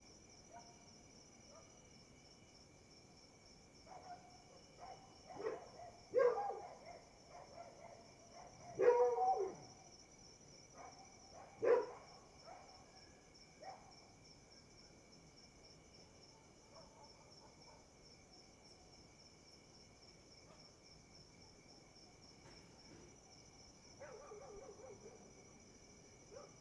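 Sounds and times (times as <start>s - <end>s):
cricket chirping: 0.0s - 26.5s
dog barking closer: 3.9s - 9.7s, 10.8s - 12.9s, 13.6s - 13.9s, 16.4s - 17.9s, 24.0s - 25.4s, 26.3s - 26.5s
dogs barking at night: 4.8s - 9.6s, 10.8s - 12.7s, 24.0s - 25.3s.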